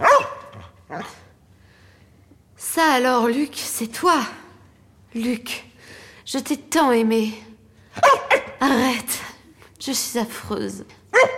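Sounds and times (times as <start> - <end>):
dog barking on a film set: 0.0 - 1.2, 8.0 - 8.6, 11.1 - 11.3
speech: 2.8 - 4.4, 5.2 - 5.6, 6.3 - 7.5, 8.6 - 9.2, 9.8 - 11.0.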